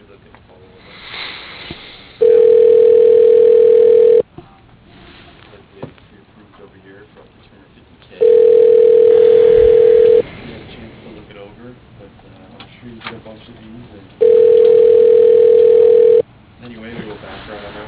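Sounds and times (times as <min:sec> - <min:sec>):
telephone ringback tones on a line during transfer to voicemail: 0:02.2 - 0:04.2, 0:08.2 - 0:10.2, 0:14.2 - 0:16.2.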